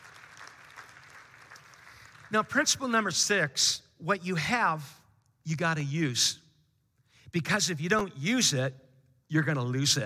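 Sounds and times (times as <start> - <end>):
audience applauding in praise: 0.0 - 2.3
speech: 2.3 - 6.4, 7.3 - 10.0.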